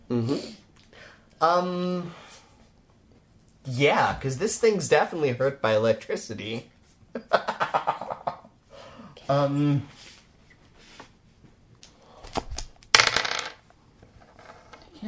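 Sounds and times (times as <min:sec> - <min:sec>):
speech: 0:00.1 - 0:00.6, 0:01.4 - 0:02.2, 0:03.7 - 0:07.8, 0:09.3 - 0:10.0
dice rolling on a table during a tabletop role-playing game: 0:12.3 - 0:14.9.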